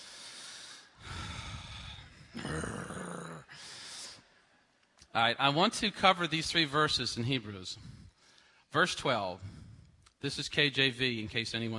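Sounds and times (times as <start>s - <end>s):
heavy rasping breathing into the microphone: 0.0s - 2.4s, 3.5s - 4.6s, 7.7s - 8.7s, 9.4s - 10.0s
speech: 5.2s - 8.0s, 8.7s - 9.6s, 10.2s - 11.7s.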